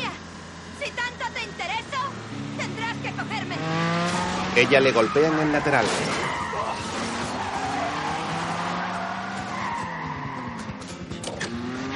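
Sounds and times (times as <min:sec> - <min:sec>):
car accelerating hard and overtaking another car during a chase: 0:00.0 - 0:11.9
tires screeching: 0:00.0 - 0:11.9
speech: 0:04.6 - 0:06.2.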